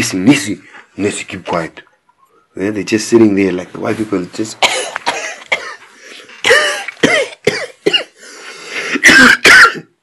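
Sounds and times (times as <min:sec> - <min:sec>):
speech: 0:00.0 - 0:01.9, 0:02.6 - 0:04.7
person imitating harsh hacking coughs of sick people: 0:04.6 - 0:05.8, 0:06.4 - 0:08.2, 0:09.0 - 0:09.9.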